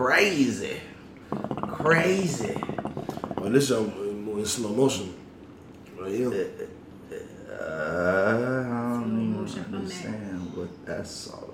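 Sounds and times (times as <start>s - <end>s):
speech: 0.0s - 2.8s, 3.4s - 5.2s, 6.0s - 8.5s, 9.5s - 11.5s
drawn-out buzzy fart: 1.3s - 3.6s.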